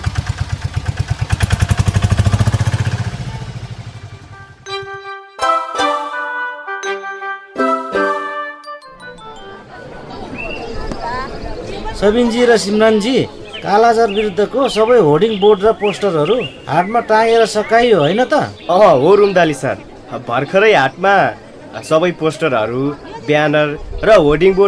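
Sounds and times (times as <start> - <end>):
tempo three-wheeler engine starting: 0.0 - 4.3
bright tinkling jingle-like melody: 4.6 - 10.3
speech: 12.0 - 24.6.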